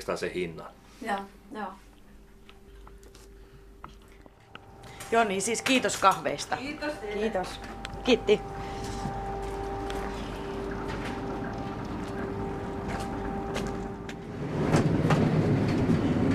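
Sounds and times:
speech: 0:00.0 - 0:01.9, 0:05.1 - 0:08.7
flour mill machinery rumbling from upstairs: 0:04.5 - 0:16.3.

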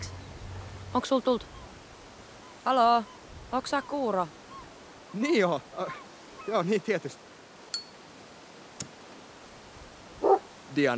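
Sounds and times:
speech: 0:00.9 - 0:01.6, 0:02.6 - 0:04.4, 0:05.1 - 0:07.2, 0:10.8 - 0:10.9
single short dog bark: 0:10.2 - 0:10.5.

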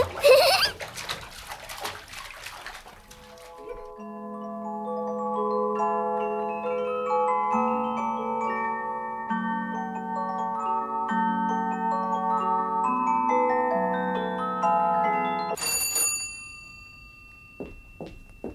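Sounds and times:
laughter: 0:00.0 - 0:00.8
warm water splashing in a bathtub: 0:00.0 - 0:04.0
sustained gentle musical tones: 0:03.2 - 0:15.6.

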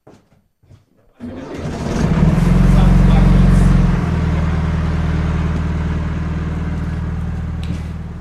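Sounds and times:
motorboat engine starting and idling before a boat trip: 0:01.2 - 0:08.1.

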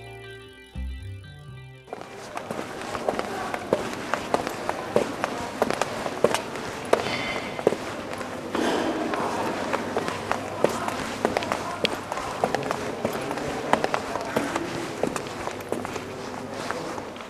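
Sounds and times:
footsteps climbing a stairway in a busy shopping mall: 0:01.9 - 0:17.2
indoor crowd noise in a busy shopping mall: 0:01.9 - 0:17.2.

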